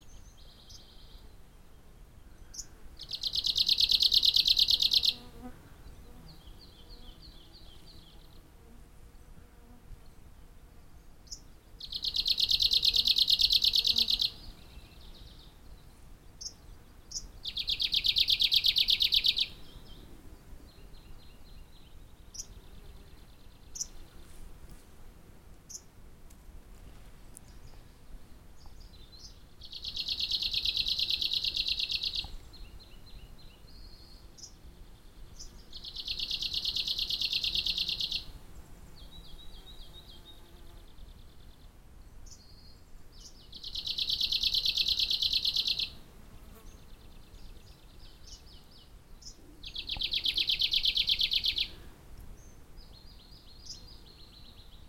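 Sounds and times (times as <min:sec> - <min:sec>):
Arctic warbler Phylloscopus borealis: 0:00.0 - 0:08.4, 0:11.0 - 0:20.1, 0:20.7 - 0:24.3, 0:28.6 - 0:38.3, 0:39.0 - 0:54.8.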